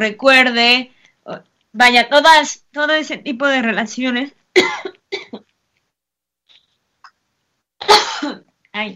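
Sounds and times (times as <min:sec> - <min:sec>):
speech: 0:00.0 - 0:05.4, 0:07.8 - 0:08.9
person coughing: 0:04.6 - 0:05.5, 0:07.8 - 0:08.5.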